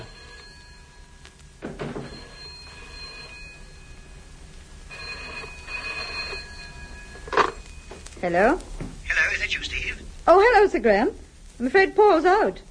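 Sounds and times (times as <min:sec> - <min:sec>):
telephone bell ringing: 0:00.0 - 0:08.1
speech: 0:08.2 - 0:08.7, 0:09.4 - 0:12.6.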